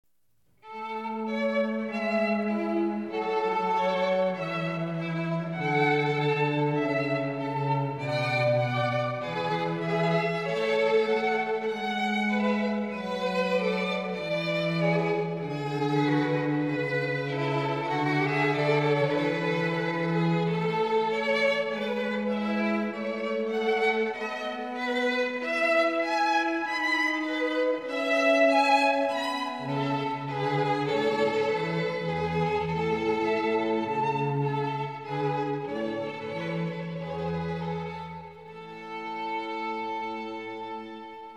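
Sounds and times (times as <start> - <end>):
cello: 0.6 - 41.3
two violins: 0.6 - 41.3.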